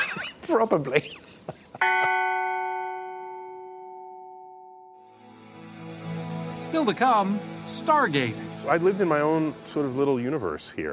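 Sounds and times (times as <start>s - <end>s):
speech: 0.5s - 2.4s, 6.7s - 10.9s
single bell struck and ringing: 1.8s - 5.2s.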